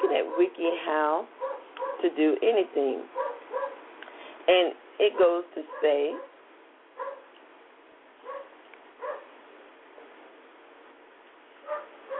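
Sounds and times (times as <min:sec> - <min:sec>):
steady hiss: 0:00.0 - 0:12.1
speech: 0:00.4 - 0:01.4, 0:02.0 - 0:03.2, 0:04.5 - 0:06.3
household pet dog barking in short sharp bursts: 0:01.4 - 0:02.0, 0:03.2 - 0:03.8, 0:05.2 - 0:06.4, 0:07.0 - 0:07.3, 0:08.2 - 0:09.3, 0:11.6 - 0:12.1.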